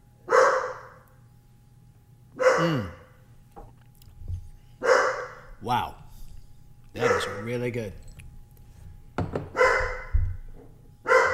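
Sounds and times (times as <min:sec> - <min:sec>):
female half German Shepherd mixed-breed dog barking on a farm: 0:00.3 - 0:01.0, 0:02.4 - 0:03.0, 0:04.8 - 0:05.5, 0:07.0 - 0:07.5, 0:09.5 - 0:10.2, 0:11.0 - 0:11.3
speech: 0:05.6 - 0:06.0, 0:06.9 - 0:08.0.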